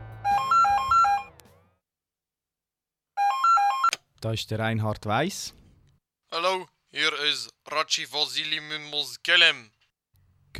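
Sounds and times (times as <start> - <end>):
telephone ringing with a warbling electronic tone: 0.2 - 1.4, 3.2 - 4.0
speech: 4.2 - 5.6, 6.3 - 9.8.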